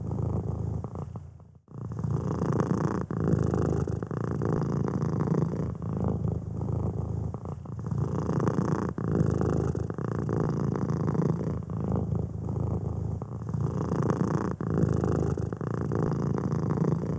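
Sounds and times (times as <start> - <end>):
cat purring: 0.0 - 17.1.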